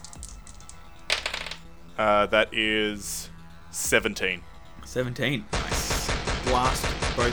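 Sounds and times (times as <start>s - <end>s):
dice rolling on a hard surface in a game: 0.0s - 1.6s
speech: 2.0s - 3.2s, 3.8s - 5.7s, 6.4s - 7.3s.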